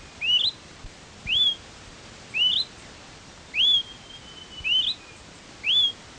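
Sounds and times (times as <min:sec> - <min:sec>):
Smoke-colored Pewee subspecies zarumae rising whistled calls: 0:00.2 - 0:00.6, 0:01.3 - 0:01.6, 0:02.3 - 0:02.7, 0:03.5 - 0:06.0.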